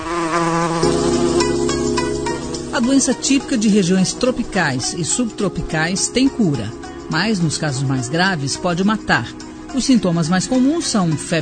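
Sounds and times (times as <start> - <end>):
female Anopheles mosquito buzzing: 0.0 - 3.2
speech: 2.8 - 11.4.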